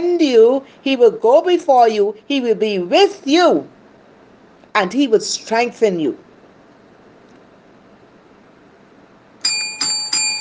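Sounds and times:
speech: 0.2s - 3.8s, 4.8s - 6.2s
bright bell ringing: 9.4s - 10.3s.

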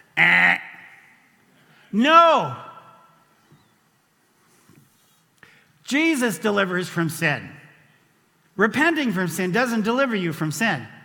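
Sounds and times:
voice imitating a game-show wrong-answer buzzer: 0.2s - 0.8s
speech: 1.9s - 2.7s, 5.9s - 7.6s, 8.6s - 11.0s.

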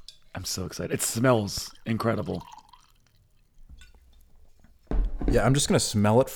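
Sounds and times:
speech: 0.4s - 2.6s, 5.3s - 6.3s
liquid pouring into a glass: 0.9s - 4.1s.

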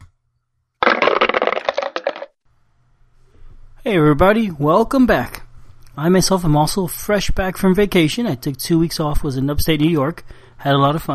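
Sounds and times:
small dice rattling across a hard table: 0.8s - 2.3s
speech: 3.8s - 5.4s, 6.0s - 11.1s.

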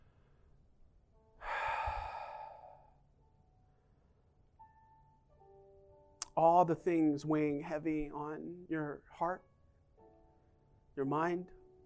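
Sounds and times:
long exhale partly voiced like a sigh: 1.4s - 3.0s
speech: 6.4s - 9.5s, 11.0s - 11.6s.

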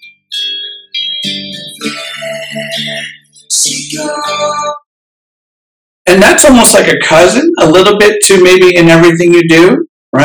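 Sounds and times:
echoey reverb-soaked vocal in a pop song: 1.8s - 4.8s
speech: 2.5s - 4.8s, 6.1s - 10.2s.

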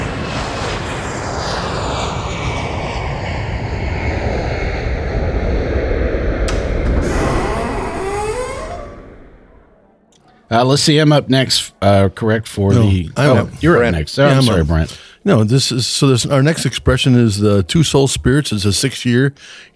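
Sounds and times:
jet airplane roaring past: 0.0s - 10.0s
speech: 10.5s - 19.7s.

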